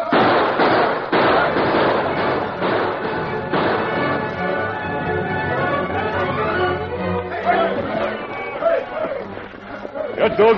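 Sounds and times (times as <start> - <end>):
rifle gunfire in an ambush on a wagon train: 0.0 - 4.4
crowd noise and voices: 0.0 - 10.5.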